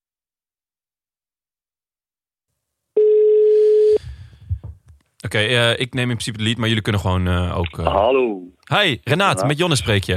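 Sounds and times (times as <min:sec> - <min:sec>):
telephone call ringing tone: 0:03.0 - 0:04.0
speech: 0:05.2 - 0:10.1.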